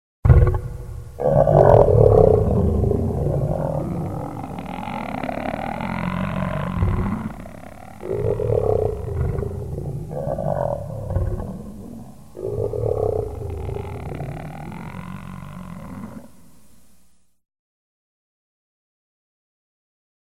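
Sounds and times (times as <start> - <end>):
large animal attacking: 0.3 - 16.3.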